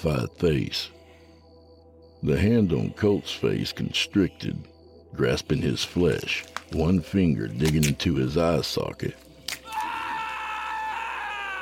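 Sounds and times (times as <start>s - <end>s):
speech: 0.0s - 1.0s, 2.2s - 9.2s
man screaming: 9.6s - 11.5s.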